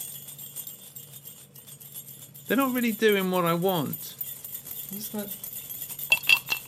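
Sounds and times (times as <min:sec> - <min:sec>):
small bells jingling: 0:00.0 - 0:06.6
speech: 0:02.5 - 0:04.2, 0:04.9 - 0:05.4
glasses clinking in a toast: 0:06.1 - 0:06.6.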